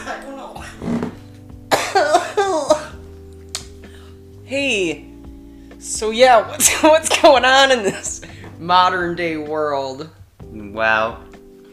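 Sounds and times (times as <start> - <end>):
person coughing harshly: 0.6 - 3.0
speech: 4.5 - 5.1, 5.9 - 10.2, 10.8 - 11.3.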